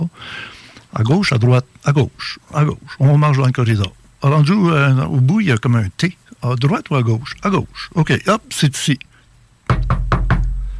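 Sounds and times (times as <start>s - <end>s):
low steady room hum: 0.0s - 10.7s
speech: 1.0s - 9.1s
firm knocking on a door: 9.7s - 10.6s.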